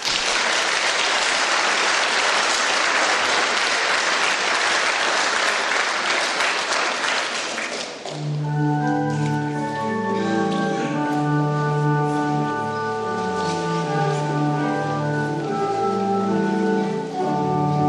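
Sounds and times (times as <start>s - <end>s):
room full of people applauding: 0.0s - 8.2s
sustained musical notes: 8.1s - 17.8s.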